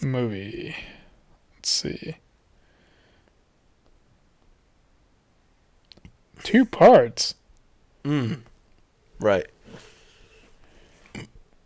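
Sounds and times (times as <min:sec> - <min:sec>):
speech: 0:00.0 - 0:01.0, 0:01.6 - 0:02.2, 0:06.4 - 0:07.4, 0:08.0 - 0:08.5, 0:09.2 - 0:09.9
quiet breathy noise: 0:00.6 - 0:01.4, 0:02.5 - 0:03.5, 0:08.0 - 0:11.5
short throaty burp: 0:08.0 - 0:08.5, 0:11.1 - 0:11.4.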